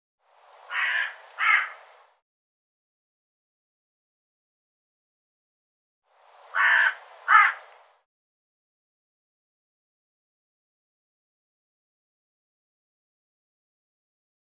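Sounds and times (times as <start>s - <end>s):
bird harsh calls: 0.7s - 1.8s, 6.5s - 7.7s.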